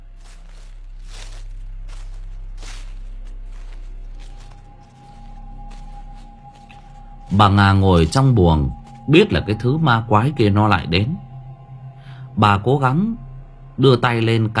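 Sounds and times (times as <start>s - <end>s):
rustling footsteps on leaves in a garden at night: 0.0s - 9.8s
low steady hum: 0.0s - 14.5s
speech: 7.4s - 11.2s, 12.4s - 13.2s, 13.8s - 14.5s.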